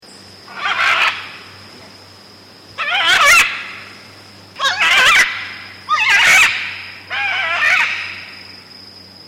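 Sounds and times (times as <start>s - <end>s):
Red-and-green Macaw screeching in flight: 0.5s - 1.3s, 2.8s - 3.9s, 4.6s - 8.4s.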